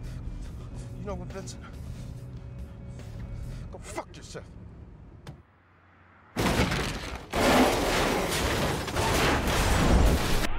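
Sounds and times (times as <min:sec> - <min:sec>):
speech: 0:01.1 - 0:01.8, 0:04.2 - 0:04.7
taxi cab crashing and flipping over: 0:06.3 - 0:10.5
glass breaking: 0:06.4 - 0:10.4
crunching and scraping metal: 0:06.4 - 0:10.5.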